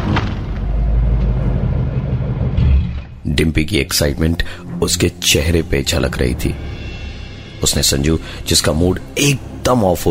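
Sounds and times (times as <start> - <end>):
car engine and road rumble at night: 0.0 - 3.2
speech: 3.4 - 6.8, 7.6 - 10.1.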